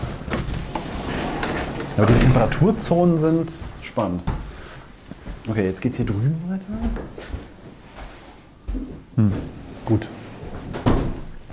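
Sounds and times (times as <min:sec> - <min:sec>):
heavy doors opening and closing: 0:00.0 - 0:04.5, 0:10.6 - 0:11.5
speech: 0:02.0 - 0:04.4, 0:05.5 - 0:07.4, 0:08.7 - 0:10.2.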